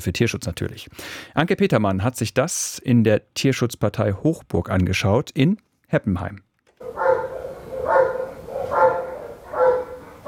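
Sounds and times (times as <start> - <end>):
speech: 0.0 - 7.0
Belgian shepherd dog barking in a kennel at an animal shelter in Heppenheim Germany: 6.8 - 10.2.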